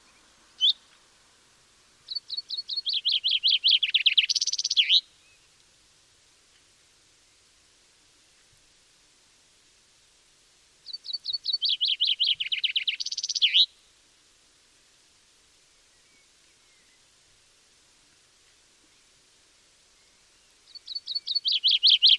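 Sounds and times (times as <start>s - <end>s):
common chaffinch song of tumbling notes ending in a flourish: 0.0s - 5.7s, 10.8s - 13.9s, 15.6s - 17.5s, 18.1s - 22.1s.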